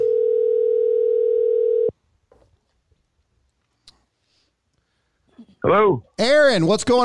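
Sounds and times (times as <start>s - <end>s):
telephone dial tone: 0.0s - 1.9s
speech: 5.6s - 7.0s.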